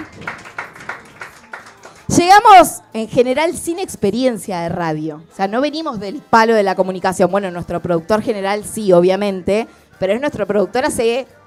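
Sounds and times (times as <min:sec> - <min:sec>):
small group applauding: 0:00.0 - 0:02.3
speech: 0:02.2 - 0:11.4.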